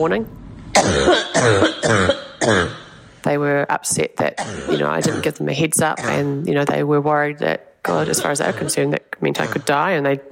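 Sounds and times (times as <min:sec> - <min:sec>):
speech: 0:00.0 - 0:10.2
harsh chesty coughing fit: 0:00.8 - 0:03.0, 0:04.4 - 0:05.4, 0:06.0 - 0:06.4, 0:07.9 - 0:08.9.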